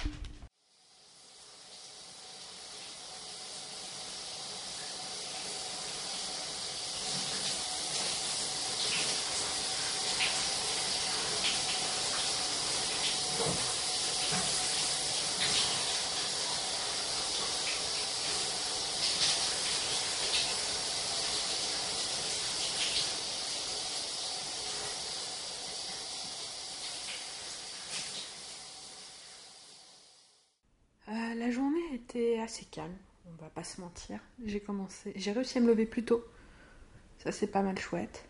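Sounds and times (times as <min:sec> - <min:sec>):
shower water spraying: 0:00.1 - 0:30.4
speech: 0:32.1 - 0:36.4, 0:37.2 - 0:38.2.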